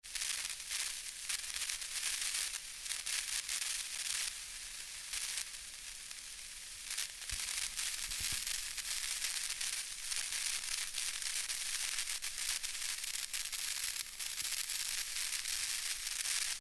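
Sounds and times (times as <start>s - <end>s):
tweeter electric static: 0.1s - 16.5s.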